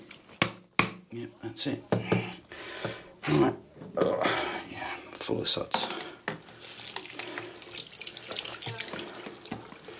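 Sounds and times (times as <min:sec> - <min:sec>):
speech: 0:01.1 - 0:02.2, 0:02.8 - 0:04.5, 0:05.3 - 0:06.0
water splashing and sloshing as film is rinsed to wash off suds: 0:06.4 - 0:09.9.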